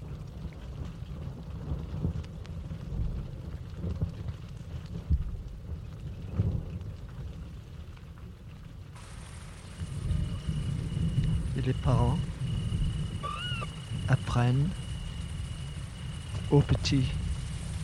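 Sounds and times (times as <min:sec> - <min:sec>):
distant rolling thunder: 0:00.0 - 0:07.7, 0:09.0 - 0:17.8
rain pattering: 0:00.0 - 0:17.8
thin high insect-like whine: 0:09.0 - 0:17.8
speech: 0:11.6 - 0:12.3, 0:14.4 - 0:14.8, 0:16.5 - 0:17.2.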